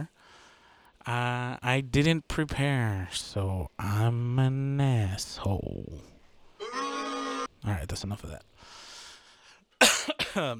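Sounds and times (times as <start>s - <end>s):
speech: 1.0s - 6.1s, 7.6s - 8.8s, 10.3s - 10.5s
person clearing throat: 9.8s - 10.5s.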